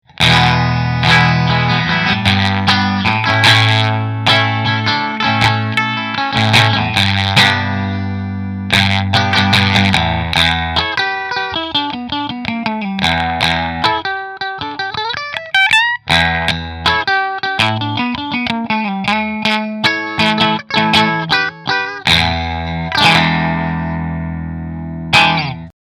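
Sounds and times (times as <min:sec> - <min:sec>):
single cutaway electric guitar playing in pickup position 4: 0:00.0 - 0:25.8.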